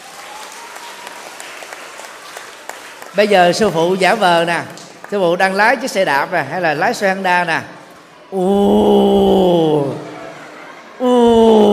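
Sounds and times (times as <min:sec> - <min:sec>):
audience clapping: 0:00.0 - 0:05.9
speech: 0:03.1 - 0:10.0
laughter: 0:09.1 - 0:11.7.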